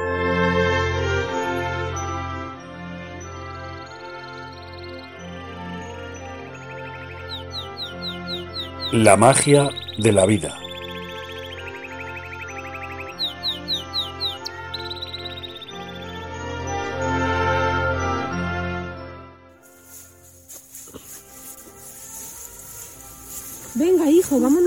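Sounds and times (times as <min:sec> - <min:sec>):
soft sustained musical backdrop: 0:00.0 - 0:24.6
small birds chirping: 0:06.6 - 0:16.4, 0:19.7 - 0:24.6
speech: 0:09.0 - 0:10.6.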